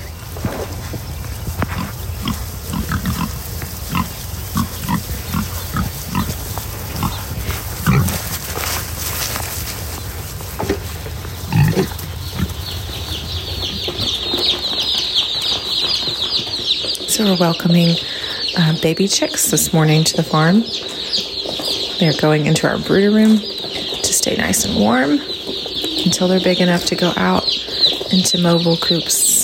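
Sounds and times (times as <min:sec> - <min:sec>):
pigs snorting: 0:00.0 - 0:14.2
steady noise: 0:00.0 - 0:29.4
pigs grunting and squealing during feeding on a farm: 0:01.6 - 0:08.6, 0:11.2 - 0:12.9
speech: 0:17.2 - 0:21.2, 0:22.0 - 0:23.6, 0:24.2 - 0:25.3, 0:26.1 - 0:27.4, 0:28.1 - 0:29.2.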